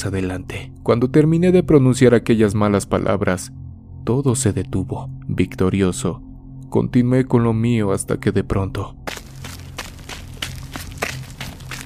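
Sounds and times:
speech: 0.0s - 9.2s
footsteps of a person running on stones: 9.1s - 11.8s.

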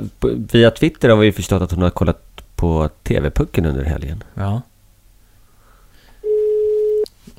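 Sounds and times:
faint noise: 0.0s - 7.3s
speech: 0.2s - 4.7s
ringback tone of an outgoing phone call: 6.2s - 7.1s.

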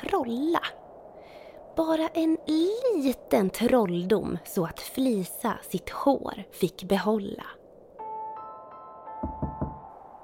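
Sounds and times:
speech: 0.2s - 0.8s, 1.8s - 7.6s
gentle knocking on a thin hollow-sounding door: 9.2s - 9.8s.

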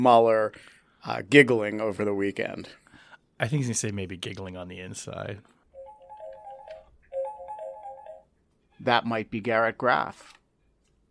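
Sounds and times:
speech: 0.0s - 2.8s, 3.4s - 5.6s, 8.8s - 10.4s
outgoing phone call ringing with warbling electronic bursts: 5.7s - 8.8s.

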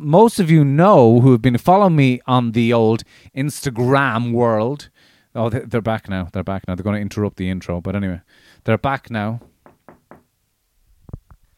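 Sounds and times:
speech: 0.0s - 9.5s
knocking on window glass: 9.4s - 10.3s.

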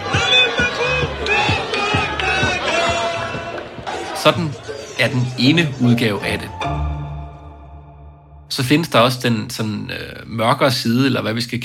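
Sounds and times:
large crowd of demonstrators on a protest march chanting slogans: 0.0s - 6.9s
speech: 4.2s - 6.8s, 8.5s - 11.6s.

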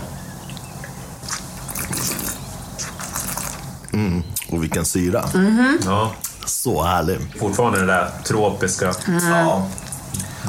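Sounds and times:
low hum: 0.0s - 10.4s
people sipping and slurping wine after a toast: 1.2s - 6.5s, 8.8s - 10.4s
speech: 3.9s - 10.4s.

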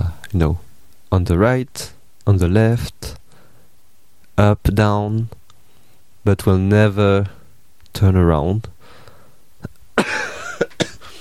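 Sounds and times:
speech: 0.3s - 3.2s, 4.4s - 5.4s, 6.2s - 7.4s, 8.0s - 8.8s
raspy hacking coughing: 10.0s - 11.1s.

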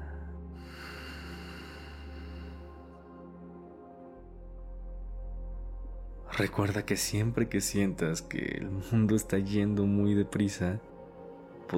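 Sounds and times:
slow exhale during a guided breathing exercise: 0.0s - 3.0s
speech: 6.4s - 10.9s.

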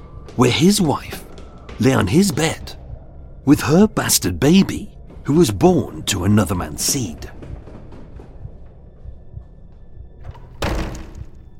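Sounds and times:
speech: 0.4s - 2.8s, 3.4s - 7.4s
wooden door bursting open: 10.2s - 11.5s.

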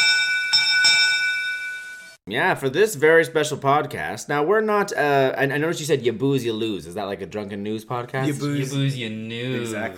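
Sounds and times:
first call bell ringing: 0.0s - 2.2s
speech: 2.3s - 9.9s.

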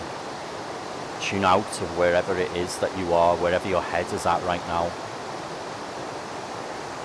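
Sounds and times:
flowing water: 0.0s - 7.0s
speech: 1.2s - 5.1s.

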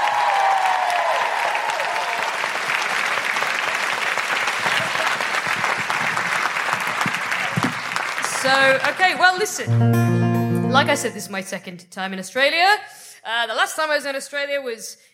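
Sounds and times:
audience at a live show in Canberra clapping: 0.0s - 9.8s
speech: 8.5s - 15.1s.

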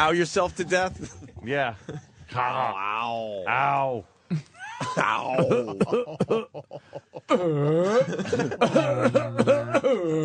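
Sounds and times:
speech: 0.0s - 10.2s
laughter: 4.4s - 9.8s
man imitating a feeble dying cough: 4.8s - 6.6s, 7.3s - 10.2s
man making strained wavering groans: 4.8s - 6.6s, 7.3s - 10.2s.

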